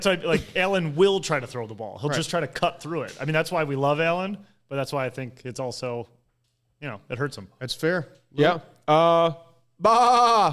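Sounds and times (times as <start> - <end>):
speech: 0.0 - 6.2, 6.8 - 10.5
person imitating a sheep bleat: 9.8 - 10.5.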